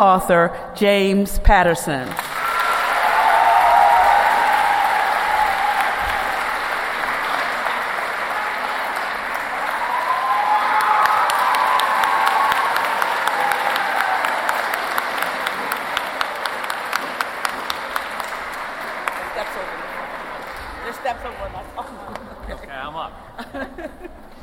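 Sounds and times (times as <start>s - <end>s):
speech: 0.0s - 2.4s
large crowd applauding at a library: 2.1s - 23.0s
crowd cheering and whooping at a library: 2.3s - 19.2s
laughter: 21.2s - 24.4s.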